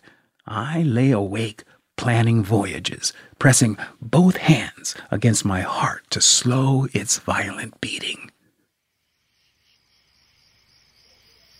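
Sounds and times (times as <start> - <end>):
speech: 0.5 - 8.3
chorus of crickets chirping at night: 8.6 - 11.5.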